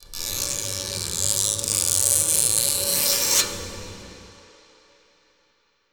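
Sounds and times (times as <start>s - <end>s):
scratching: 0.0s - 3.5s.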